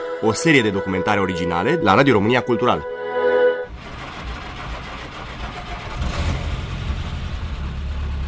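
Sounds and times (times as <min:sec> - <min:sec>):
speech: 0:00.2 - 0:02.9
four-cylinder car engine starting and idling: 0:03.7 - 0:08.2.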